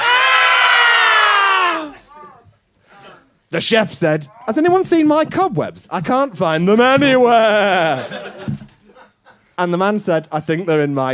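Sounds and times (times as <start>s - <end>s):
people imitating screaming: 0.0s - 2.3s
speech: 3.5s - 8.7s, 9.6s - 11.1s
laughter: 7.3s - 9.5s.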